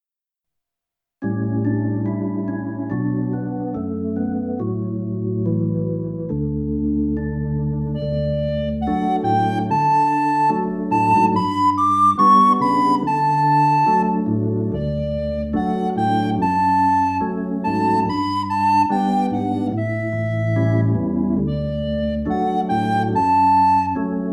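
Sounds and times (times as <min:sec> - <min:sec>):
organ: 0:01.2 - 0:24.3
flute: 0:08.0 - 0:24.3.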